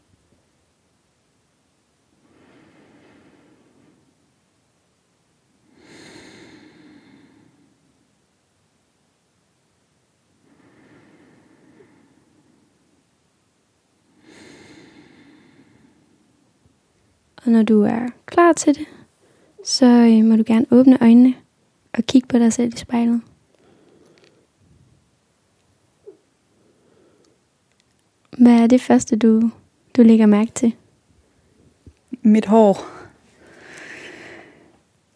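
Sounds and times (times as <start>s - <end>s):
slow deep breaths into the belly: 2.2s - 4.2s, 5.6s - 8.0s, 10.4s - 13.1s, 14.1s - 16.5s, 23.5s - 24.9s, 26.0s - 27.5s, 32.8s - 34.9s
speech: 17.4s - 19.0s, 19.6s - 21.4s, 22.0s - 23.3s, 28.5s - 30.8s, 32.2s - 33.0s.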